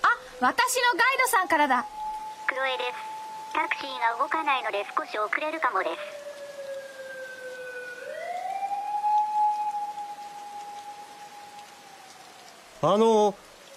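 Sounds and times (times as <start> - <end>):
constant hiss of rain: 0.0 - 13.7
police siren wailing as it passes: 0.0 - 13.7
speech: 0.4 - 6.2, 12.8 - 13.5.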